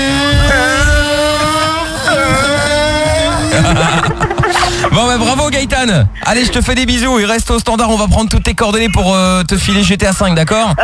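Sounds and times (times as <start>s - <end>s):
car engine racing in a video game: 0.0s - 8.6s
laughter: 1.6s - 6.9s, 8.1s - 10.8s
speech: 5.1s - 10.8s.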